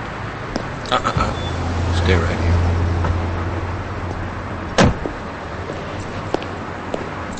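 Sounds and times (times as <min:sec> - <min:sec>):
low steady engine hum: 0:00.0 - 0:07.3
speech: 0:00.9 - 0:01.2, 0:02.1 - 0:02.4
car door shutting with a solid thump in a motel parking lot: 0:00.9 - 0:02.0, 0:04.7 - 0:05.2.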